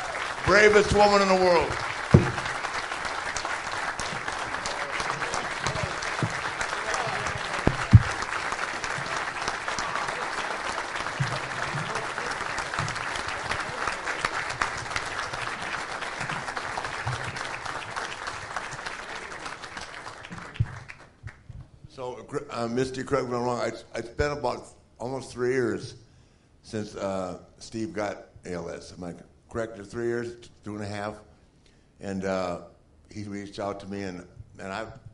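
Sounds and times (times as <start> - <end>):
audience applause: 0.0 - 21.4
speech: 0.5 - 2.2, 22.8 - 26.0, 26.7 - 31.3, 32.0 - 35.1.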